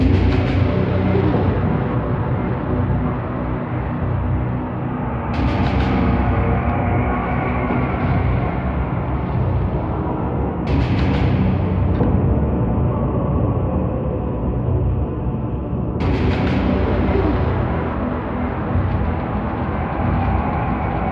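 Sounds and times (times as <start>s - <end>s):
ambient game music: 0.0s - 21.0s.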